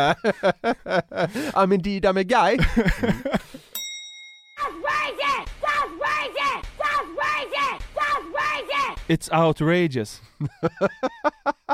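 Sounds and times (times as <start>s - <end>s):
laughter: 0.0s - 1.5s, 2.5s - 3.6s, 10.2s - 11.7s
speech: 0.0s - 3.5s, 9.1s - 11.2s
bright ding: 3.8s - 4.7s
person screaming loudly in a song: 4.6s - 9.0s.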